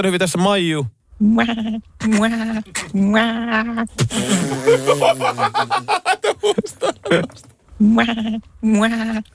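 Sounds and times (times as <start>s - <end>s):
speech: 0.0s - 9.3s
goat bleating: 1.2s - 3.9s, 7.8s - 9.3s
laughter: 4.2s - 7.4s.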